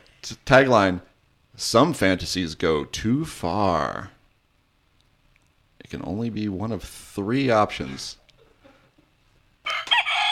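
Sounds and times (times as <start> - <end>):
speech: 0.3 - 4.2, 5.9 - 8.2
rooster crowing: 9.7 - 10.3.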